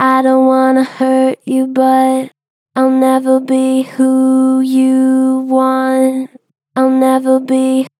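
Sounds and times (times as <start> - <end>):
song vocals: 0.0 - 7.9.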